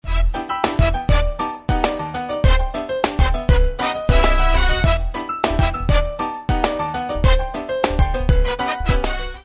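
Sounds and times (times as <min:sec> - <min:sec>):
Spanish salsa music: 0:00.0 - 0:09.4.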